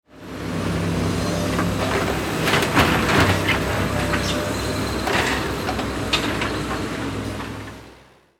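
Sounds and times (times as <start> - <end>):
excavator construction vehicle bucket dumping: 1.2 - 7.8.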